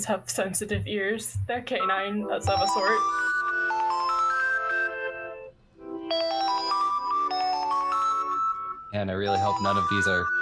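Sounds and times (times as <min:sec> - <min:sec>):
speech: 0:00.0 - 0:03.3, 0:08.9 - 0:10.4
default Android phone ringtone melody: 0:01.7 - 0:10.4.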